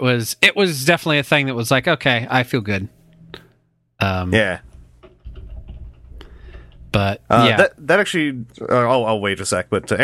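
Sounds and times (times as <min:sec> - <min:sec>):
speech: 0:00.0 - 0:03.0, 0:04.0 - 0:04.7, 0:06.9 - 0:10.0
typing on a new computer keyboard: 0:05.0 - 0:06.8.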